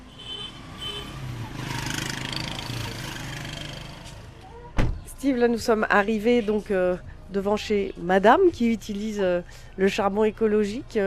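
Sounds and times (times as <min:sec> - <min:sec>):
street traffic with cars rumbling past: 0:00.0 - 0:04.4
speech: 0:05.2 - 0:11.0.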